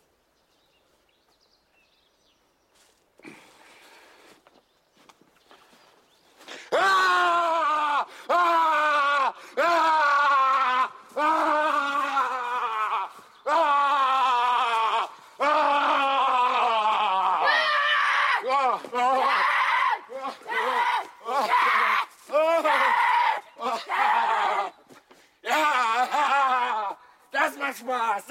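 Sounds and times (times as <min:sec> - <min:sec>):
person screaming while running around: 0:06.7 - 0:24.7, 0:25.4 - 0:27.0.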